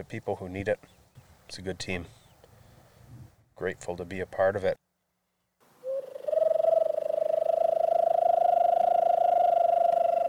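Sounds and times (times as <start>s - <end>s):
speech: 0.0s - 2.2s, 3.6s - 4.8s
hawk owl call: 5.8s - 10.2s.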